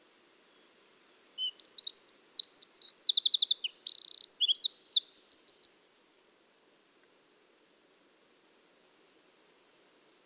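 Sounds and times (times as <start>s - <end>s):
Eurasian wren Troglodytes troglodytes twittering and trilling with buzzy rattle: 1.2s - 5.8s.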